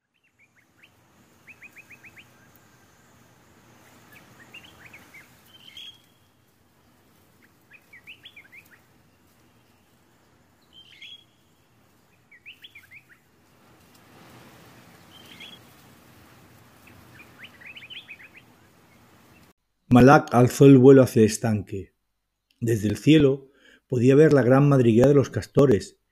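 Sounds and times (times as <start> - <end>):
soft steady outdoor noise: 0.0 - 26.1
birds chirping and singing: 0.1 - 2.6, 3.8 - 6.3, 7.4 - 13.3, 15.0 - 15.6, 16.8 - 19.5
speech: 19.9 - 21.9, 22.6 - 26.0.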